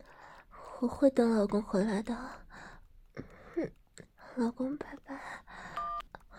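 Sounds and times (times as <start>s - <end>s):
speech: 0.8s - 2.4s, 4.4s - 5.1s
telephone keypad dialing tone: 5.7s - 6.1s.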